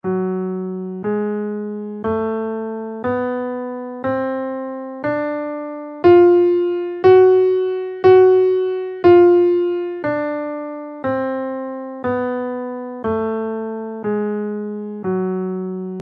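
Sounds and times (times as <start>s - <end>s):
harmonic minor b5 scale in F minor: 0.0s - 16.0s.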